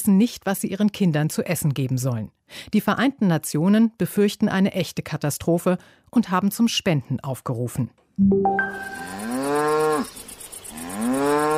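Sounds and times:
speech: 0:00.0 - 0:09.2
insects chirping: 0:08.6 - 0:11.5
cow mooing: 0:08.9 - 0:10.1, 0:10.8 - 0:11.5.

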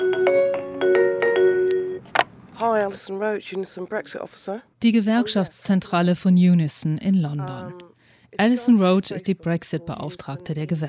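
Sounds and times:
telephone ringing at a trade union's headquarters: 0:00.0 - 0:02.1
speech: 0:02.6 - 0:10.8.

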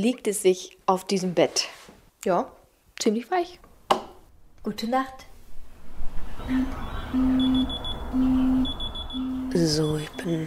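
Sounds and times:
speech: 0:00.0 - 0:03.6, 0:04.6 - 0:05.3, 0:06.4 - 0:08.3, 0:09.6 - 0:10.4
thin high tone: 0:06.2 - 0:10.4
alarm clock beeping with electronic beeps: 0:06.4 - 0:10.4.

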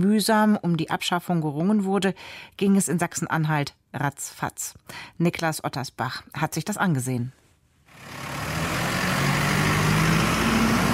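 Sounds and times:
speech: 0:00.0 - 0:07.4
heavy truck engine starting and rumbling: 0:07.9 - 0:10.9.

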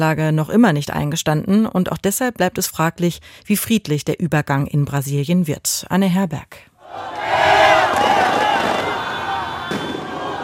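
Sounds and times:
speech: 0:00.0 - 0:07.1
large crowd cheering and shouting outdoors: 0:06.8 - 0:10.4
fireworks popping and crackling: 0:07.9 - 0:10.4.

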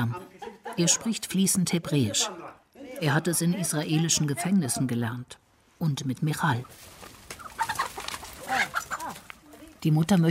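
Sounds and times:
laughter: 0:00.0 - 0:01.2
speech: 0:00.8 - 0:07.0, 0:09.8 - 0:10.3
chickens clucking in a henhouse in a garden: 0:06.5 - 0:09.6.

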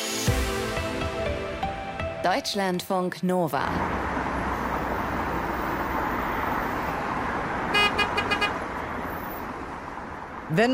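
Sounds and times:
dense city road traffic roar: 0:00.3 - 0:10.7
speech: 0:02.2 - 0:04.0, 0:10.5 - 0:10.7
car horn honking: 0:07.6 - 0:09.2.

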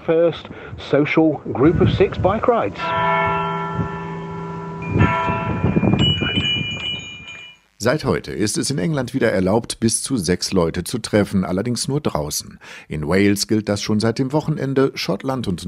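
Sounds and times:
speech: 0:00.0 - 0:04.0, 0:07.8 - 0:15.6
bell ringing on a village square: 0:01.6 - 0:07.8.

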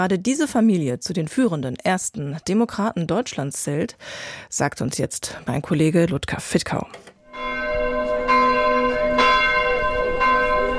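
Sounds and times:
speech: 0:00.0 - 0:07.5
church bells ringing in Kelkheim-Hornau in the Taunus, Germany: 0:07.3 - 0:10.7.

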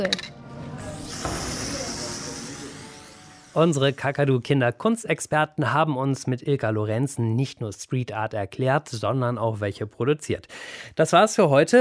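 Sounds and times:
speech: 0:00.0 - 0:00.4, 0:03.6 - 0:11.8
chalk spray can spraying onto a wall during a street art session: 0:00.9 - 0:03.6.

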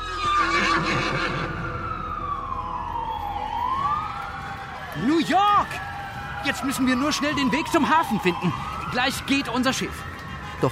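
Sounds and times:
horse whinnying: 0:00.0 - 0:01.7
long wailing siren-like tone: 0:00.0 - 0:10.6
speech: 0:05.0 - 0:10.6.

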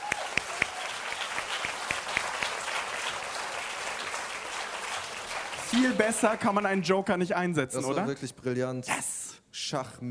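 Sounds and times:
audience clapping: 0:00.0 - 0:07.3
speech: 0:05.7 - 0:10.0.

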